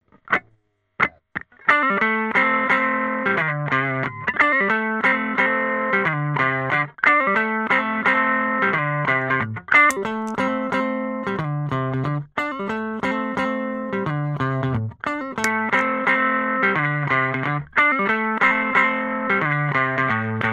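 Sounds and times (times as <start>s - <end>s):
guitar through compressor and rectifier effects: 0.1s - 20.5s.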